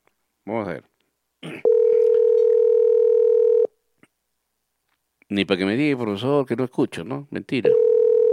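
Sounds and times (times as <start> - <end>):
speech: 0.5 - 0.9, 5.3 - 7.9
telephone ringback tone for an unanswered call: 1.6 - 3.7, 7.7 - 8.3.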